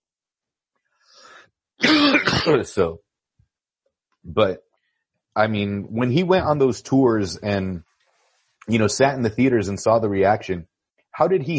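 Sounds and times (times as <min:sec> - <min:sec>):
person clearing throat: 0:01.8 - 0:02.9
person coughing in a rasping burst: 0:01.8 - 0:02.9
speech: 0:02.4 - 0:03.1, 0:04.2 - 0:04.7, 0:05.4 - 0:07.9, 0:08.7 - 0:11.5.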